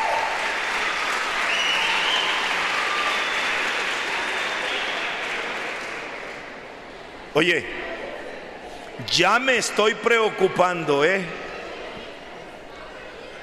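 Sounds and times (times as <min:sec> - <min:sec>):
audience applause at a stage show: 0:00.0 - 0:06.8
speech: 0:07.4 - 0:07.9, 0:09.0 - 0:11.5.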